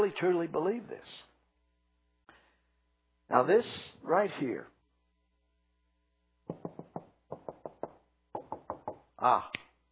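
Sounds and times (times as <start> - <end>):
speech: 0.0 - 1.3, 3.3 - 4.7, 9.2 - 9.6
knocking on a wooden door: 6.5 - 9.1.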